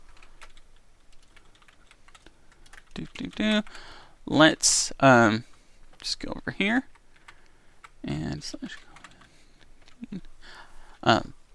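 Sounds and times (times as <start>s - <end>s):
faint hum: 0.0s - 11.5s
typing a URL on a computer keyboard: 0.1s - 3.8s, 6.9s - 10.1s
speech: 3.0s - 6.9s, 8.0s - 8.9s, 10.0s - 11.4s.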